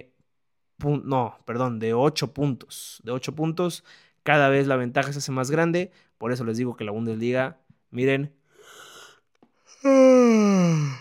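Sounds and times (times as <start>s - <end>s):
speech: 0.8s - 8.8s, 9.7s - 10.9s
drawn-out human yawn: 8.6s - 10.9s.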